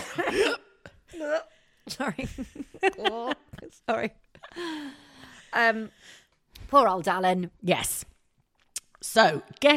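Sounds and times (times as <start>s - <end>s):
person coughing after a drink went down wrong: 0.0s - 1.0s
speech: 2.0s - 8.1s, 9.0s - 9.7s.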